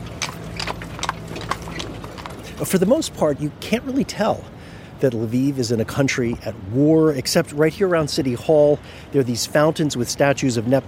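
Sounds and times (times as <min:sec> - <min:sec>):
horse hooves clip-clopping on cobblestones: 0:00.0 - 0:03.2
rumble of horse-drawn carriage wheels: 0:00.0 - 0:03.7
street noise: 0:00.0 - 0:10.8
speech: 0:02.6 - 0:10.8.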